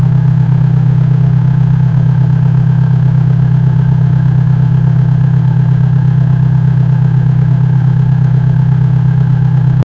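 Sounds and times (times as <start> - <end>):
sports car engine: 0.0 - 9.8.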